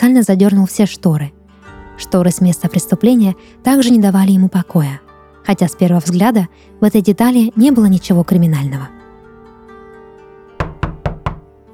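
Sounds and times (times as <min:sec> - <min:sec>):
speech: 0:00.1 - 0:01.4, 0:02.0 - 0:09.0
knocking on a hotel room door: 0:10.6 - 0:11.5.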